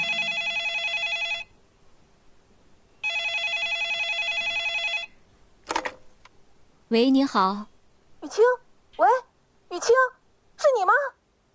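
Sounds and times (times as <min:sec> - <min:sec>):
telephone ringing in long electronic bursts: 0:00.0 - 0:01.5, 0:03.0 - 0:05.2
speech: 0:06.9 - 0:07.7, 0:08.3 - 0:09.2, 0:09.8 - 0:11.1.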